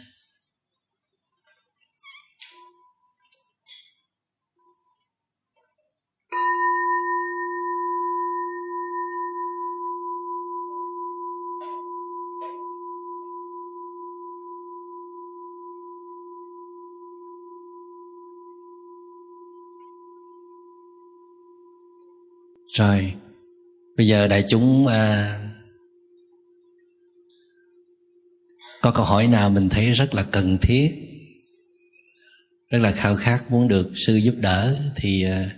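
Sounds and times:
single mindfulness bell struck with a deep steady tone: 0:06.3 - 0:26.1
speech: 0:22.8 - 0:23.2, 0:24.0 - 0:25.4, 0:28.8 - 0:31.1, 0:32.7 - 0:35.5.

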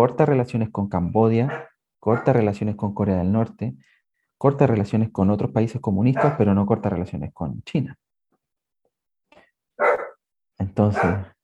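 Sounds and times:
speech: 0:00.0 - 0:08.0, 0:10.6 - 0:11.4
single loud dog bark: 0:01.4 - 0:02.4, 0:06.2 - 0:06.5, 0:09.8 - 0:10.2, 0:10.9 - 0:11.3.

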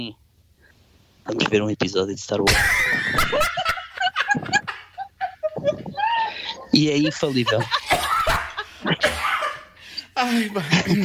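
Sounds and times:
speech: 0:00.0 - 0:00.2, 0:01.3 - 0:03.4, 0:06.8 - 0:08.1, 0:10.2 - 0:11.0
person laughing: 0:02.5 - 0:09.7, 0:10.3 - 0:11.0
harsh choking coughs during laughter: 0:07.9 - 0:09.8, 0:10.6 - 0:11.0.

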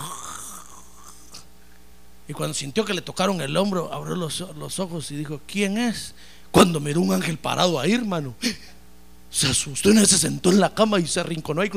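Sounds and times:
man's voice imitating a rasping throaty snore: 0:00.0 - 0:01.5
speech: 0:02.3 - 0:11.7.

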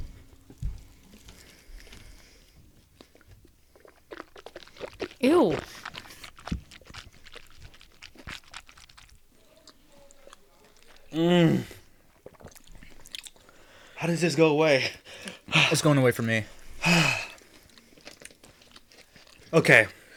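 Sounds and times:
wet crunching and chewing of chicken wings: 0:00.4 - 0:11.2, 0:11.8 - 0:14.0, 0:16.9 - 0:20.1
person exclaiming: 0:05.2 - 0:05.7
breathy vocal noises: 0:05.2 - 0:05.8, 0:11.1 - 0:11.9, 0:16.8 - 0:17.4
speech: 0:05.2 - 0:05.8, 0:11.2 - 0:11.7, 0:14.2 - 0:15.0, 0:15.7 - 0:17.2, 0:19.5 - 0:20.0.

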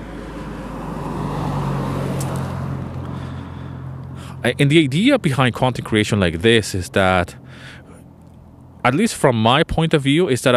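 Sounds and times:
car passing by outdoors: 0:00.0 - 0:04.6
speech: 0:04.4 - 0:07.8, 0:08.8 - 0:10.5.

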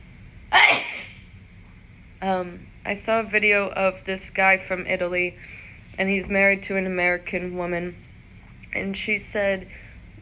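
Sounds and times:
faint steady hum: 0:00.0 - 0:10.2
person sneezing: 0:00.5 - 0:01.2
speech: 0:02.2 - 0:08.1, 0:08.7 - 0:09.8.

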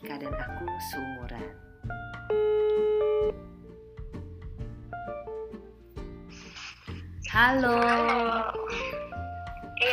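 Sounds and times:
speech: 0:00.0 - 0:02.4, 0:07.4 - 0:08.9
telephone ringing as a call is placed: 0:02.3 - 0:03.4.

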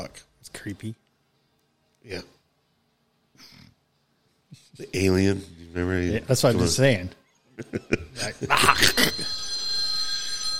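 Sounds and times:
speech: 0:00.1 - 0:01.0, 0:02.0 - 0:02.4, 0:04.8 - 0:09.5
laughter: 0:07.6 - 0:09.3
phone ringing with a bright electronic tone: 0:08.6 - 0:10.5.

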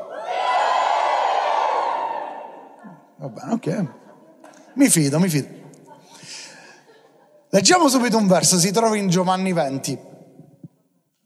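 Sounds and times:
crowd shouting and cheering: 0:00.0 - 0:03.1
laughter: 0:00.0 - 0:07.6
speech: 0:03.2 - 0:04.0, 0:04.8 - 0:05.6, 0:07.5 - 0:10.1.

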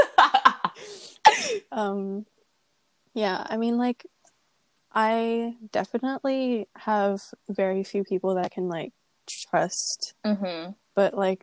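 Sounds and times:
person coughing sharply: 0:00.7 - 0:01.7
speech: 0:01.6 - 0:02.4, 0:03.2 - 0:04.2, 0:05.0 - 0:11.4
brief hummed vocal tone: 0:10.3 - 0:10.7
rough throat sounds: 0:10.3 - 0:10.8.

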